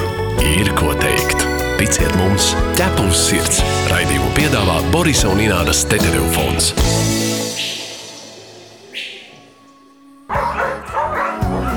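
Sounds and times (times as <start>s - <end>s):
speech: 0.4s - 7.8s
dog barking: 10.3s - 11.7s.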